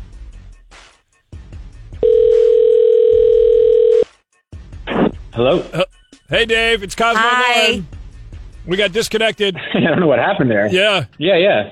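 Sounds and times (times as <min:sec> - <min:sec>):
electronic telephone ringing tone: 0:02.0 - 0:04.1
speech: 0:05.4 - 0:07.9, 0:08.7 - 0:11.7.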